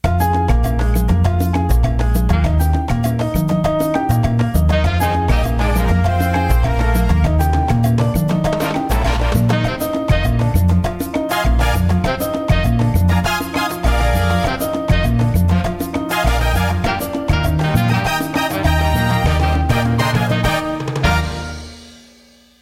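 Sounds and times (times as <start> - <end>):
mambo music: 0.0 - 22.5.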